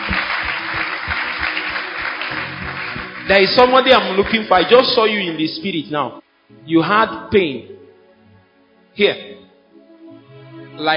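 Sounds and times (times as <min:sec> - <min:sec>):
church congregation clapping in praise during a healing service: 0:00.0 - 0:05.7
speech: 0:03.3 - 0:07.8, 0:09.0 - 0:09.4, 0:10.8 - 0:10.9.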